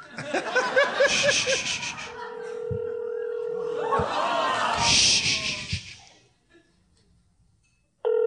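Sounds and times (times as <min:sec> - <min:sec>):
laughter: 0:00.0 - 0:06.8
speech: 0:00.3 - 0:02.1
phone ringing with a loud steady electronic tone: 0:02.2 - 0:04.0, 0:08.0 - 0:08.2.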